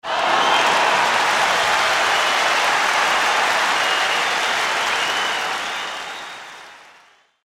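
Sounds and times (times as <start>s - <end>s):
large stadium applause: 0.0s - 7.4s.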